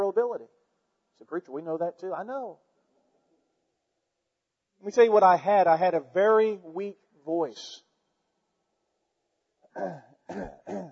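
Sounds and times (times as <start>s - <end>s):
speech: 0.1s - 0.6s, 1.2s - 2.7s, 4.8s - 7.8s, 9.8s - 10.9s
person coughing with rough throaty coughs: 9.8s - 10.9s.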